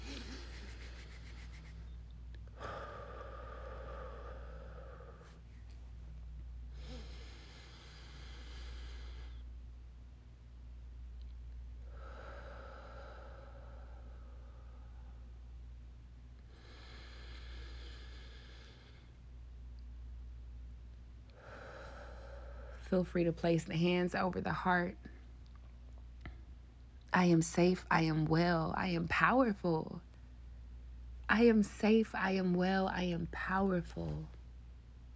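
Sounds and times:
slow deep breathing during a calming exercise: 0.0s - 5.8s, 6.7s - 9.5s, 11.8s - 15.4s, 16.4s - 19.2s, 21.3s - 22.8s
steady low hum: 0.0s - 35.1s
speech: 22.9s - 25.1s, 27.2s - 30.0s, 31.3s - 34.4s.

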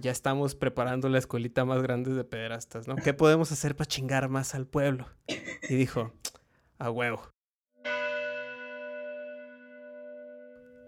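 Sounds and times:
speech: 0.0s - 8.0s
church bell strike: 7.8s - 10.8s.

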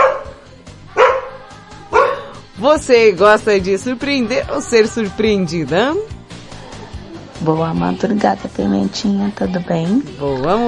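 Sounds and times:
dog barking: 0.0s - 2.4s
speech: 2.6s - 6.2s, 7.4s - 10.6s.

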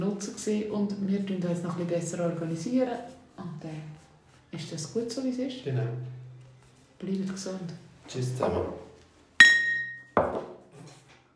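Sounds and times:
speech: 0.0s - 3.9s, 4.6s - 6.2s, 7.0s - 8.8s
two glasses clinking in a toast: 9.4s - 10.4s.

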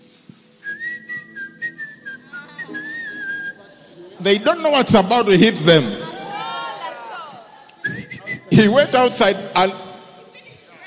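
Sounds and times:
person whistling a tune: 0.6s - 3.6s, 7.8s - 8.6s
speech: 4.2s - 6.0s, 8.6s - 9.8s.

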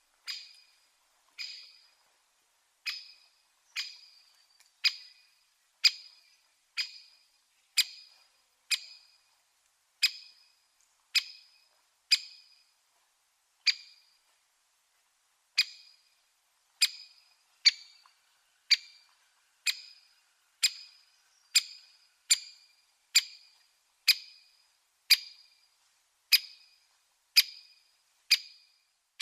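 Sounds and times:
great spotted woodpecker chick contact call: 0.2s - 2.0s, 2.8s - 9.3s, 10.0s - 12.7s, 16.8s - 25.6s, 26.3s - 29.2s.

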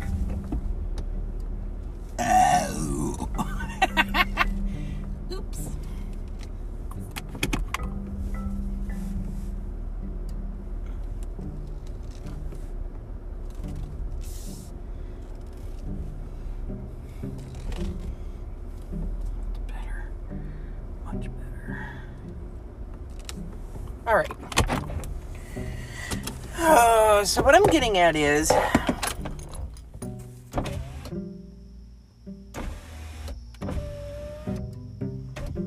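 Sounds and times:
car engine humming while creeping into a parking spot: 0.0s - 35.6s
person exclaiming: 2.2s - 3.6s, 26.5s - 27.4s
laughter: 3.2s - 4.6s
speech: 27.3s - 28.9s.

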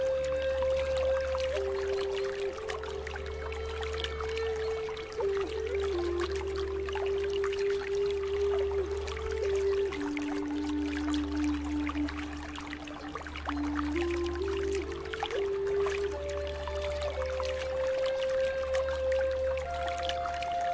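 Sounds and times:
flowing water: 0.0s - 20.7s
slow deep relaxing melody of long sustained notes: 0.0s - 20.7s.

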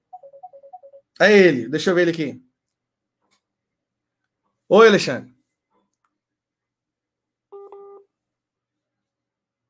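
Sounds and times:
electronic call-connecting beeps on a phone: 0.1s - 1.1s, 7.5s - 8.1s
speech: 1.2s - 2.5s, 4.7s - 5.3s.

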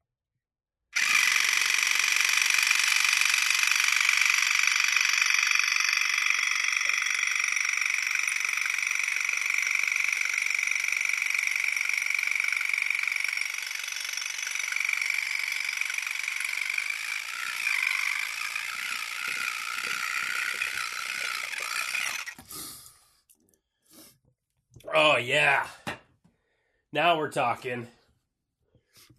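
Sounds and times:
small battery-powered nasal device buzzing: 1.0s - 22.5s
speech: 25.1s - 25.8s, 27.0s - 28.0s.

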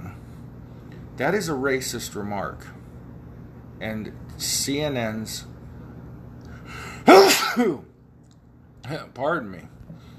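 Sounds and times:
speech: 1.2s - 2.8s, 3.8s - 5.5s, 7.0s - 7.9s, 8.8s - 9.8s
loud sneeze with breathy trail: 7.0s - 7.8s.

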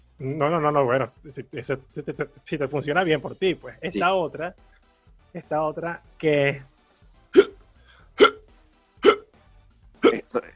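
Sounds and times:
speech: 0.2s - 6.7s
person hiccuping: 7.4s - 7.6s, 8.2s - 8.4s, 9.0s - 9.3s, 10.0s - 10.5s.

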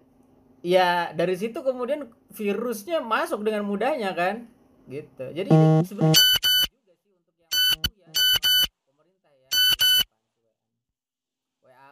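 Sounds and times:
speech: 0.6s - 6.4s
old-style mobile phone notification tone: 5.5s - 6.7s, 7.5s - 8.7s.

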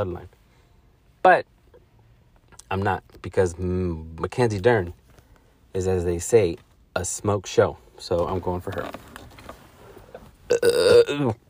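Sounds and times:
speech: 0.0s - 0.4s, 1.2s - 1.5s, 2.7s - 5.0s, 5.7s - 9.1s, 10.5s - 11.4s
loud drawn-out burp: 10.5s - 11.3s.

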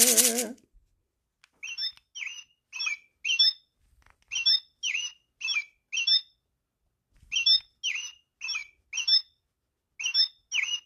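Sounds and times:
bird squawking and chirping: 1.6s - 3.6s, 4.3s - 6.4s, 7.3s - 9.4s, 10.0s - 10.8s.

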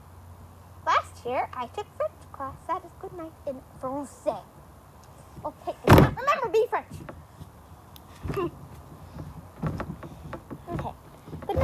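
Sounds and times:
speech: 1.2s - 4.6s, 5.4s - 7.2s, 8.2s - 8.6s
bed creaking and squeaking as someone shifts on it: 8.2s - 11.6s.

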